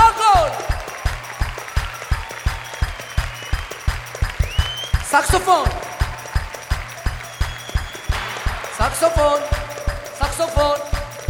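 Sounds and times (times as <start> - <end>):
audience clapping in rhythm as band musicians are introduced: 0.0 - 11.2
speech: 5.2 - 5.8, 8.8 - 9.6, 10.4 - 11.0.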